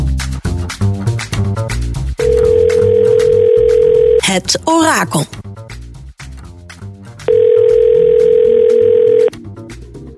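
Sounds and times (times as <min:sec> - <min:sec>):
music: 0:00.0 - 0:10.1
outgoing call telephone ringing tone: 0:02.2 - 0:04.2, 0:07.3 - 0:09.3
speech: 0:04.4 - 0:05.4.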